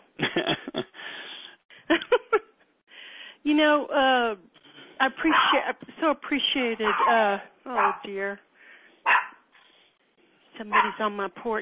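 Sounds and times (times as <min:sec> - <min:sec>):
speech: 0:03.6 - 0:08.5, 0:10.6 - 0:11.6
puppy barking: 0:05.3 - 0:05.7, 0:06.8 - 0:07.2, 0:07.8 - 0:08.1, 0:09.0 - 0:09.4, 0:10.7 - 0:11.6.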